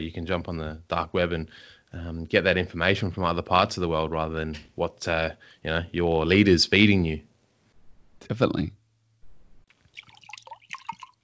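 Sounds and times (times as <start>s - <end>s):
speech: 0.0s - 7.3s, 8.2s - 8.8s
soft low hum: 7.4s - 9.7s
water pouring into a glass: 9.9s - 11.2s.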